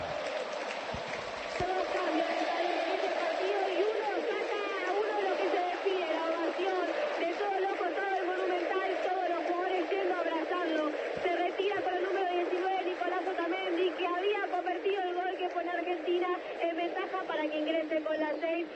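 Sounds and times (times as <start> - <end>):
large stadium crowd cheering in an ovation: 0.0 - 18.7.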